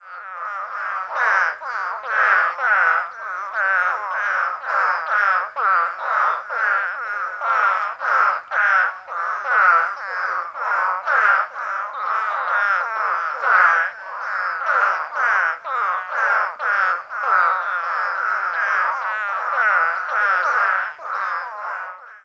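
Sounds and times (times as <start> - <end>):
Hurter's spadefoot toad Scaphiopus hurterii chorus in DeWitt County Texas: 0.0 - 22.2.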